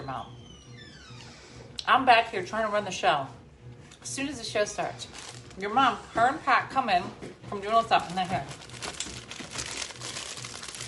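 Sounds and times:
speech: 1.9s - 3.4s, 4.0s - 8.7s
cardboard box of movie candy crinkling and rustling: 5.0s - 5.6s, 7.9s - 10.8s.

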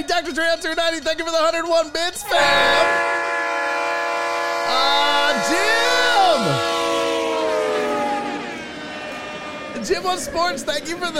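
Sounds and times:
speech: 0.0s - 3.2s, 4.7s - 6.7s, 9.8s - 11.1s
loud sustained train horn: 2.2s - 11.1s.

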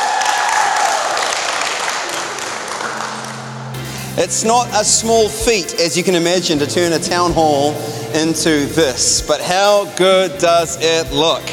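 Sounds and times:
large crowd applauding at a church gathering in a town hall: 0.0s - 3.9s
speech: 4.2s - 11.5s.

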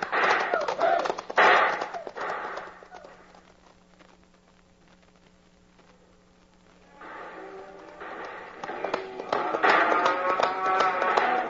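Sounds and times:
horses galloping: 0.0s - 4.0s, 6.9s - 11.4s.

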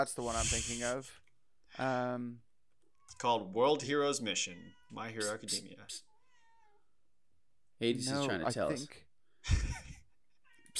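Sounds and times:
speech: 0.0s - 2.5s, 3.2s - 6.1s, 7.8s - 9.9s
cat meowing with a raspy edge: 4.6s - 6.9s.

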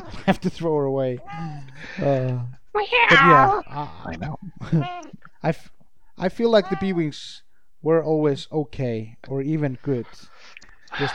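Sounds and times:
speech: 0.3s - 11.1s
cat meowing: 2.8s - 5.2s, 6.5s - 7.1s.

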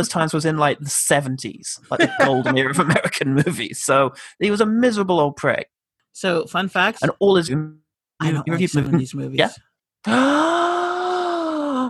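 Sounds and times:
speech: 0.0s - 10.6s
laughter: 1.9s - 3.6s
person gasping into a voiced ooh: 10.0s - 11.8s.

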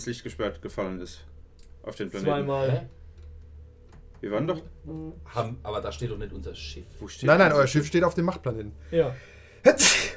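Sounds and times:
speech: 0.0s - 3.0s, 4.2s - 10.1s
person sneezing: 9.7s - 10.1s.

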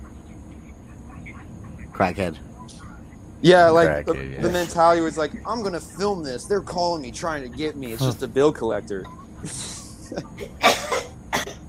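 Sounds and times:
speech: 2.0s - 2.5s, 3.4s - 10.8s
person coughing harshly in the background: 10.4s - 11.6s.

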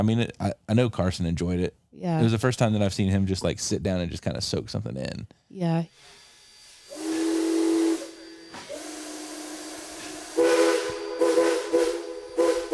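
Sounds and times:
speech: 0.0s - 6.2s
steam train hissing steam: 6.0s - 12.7s
steam train whistle: 6.8s - 12.7s.

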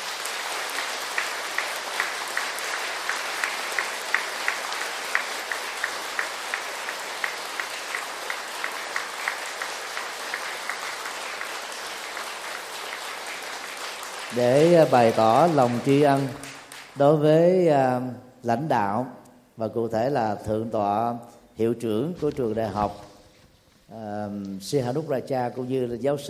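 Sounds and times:
audience applauding at a Vietnamese Buddhist temple gathering: 0.0s - 17.2s
speech: 14.3s - 23.1s, 23.9s - 26.2s.

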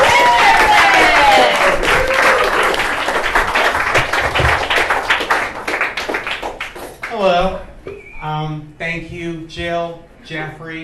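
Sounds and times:
audience clapping and cheering for a comedian coming to the stage: 0.0s - 7.2s
speech: 9.0s - 10.8s.

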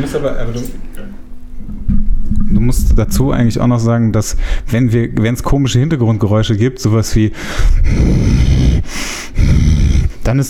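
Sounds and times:
speech: 0.0s - 0.9s, 2.6s - 9.1s, 10.3s - 10.4s
voice imitating loud snoring or heavy breathing: 7.7s - 10.2s.

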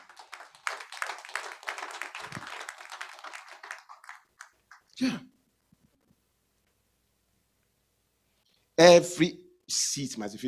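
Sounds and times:
audience clapping hands: 0.0s - 5.0s
speech: 5.0s - 5.3s, 8.8s - 10.4s.

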